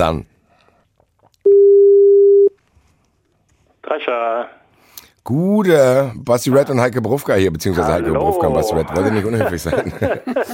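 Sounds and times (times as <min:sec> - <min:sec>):
speech: 0:00.0 - 0:00.3, 0:03.9 - 0:04.6, 0:05.2 - 0:10.5
telephone ringback tone while placing call: 0:01.5 - 0:02.6
laughter: 0:08.0 - 0:10.5.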